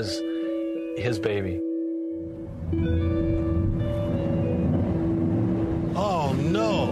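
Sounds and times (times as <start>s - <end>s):
speech: 0.0s - 0.3s, 1.0s - 1.7s, 2.7s - 3.2s
wavering warbling whine: 2.2s - 6.8s
old Chevrolet car engine rumbling: 2.3s - 6.8s.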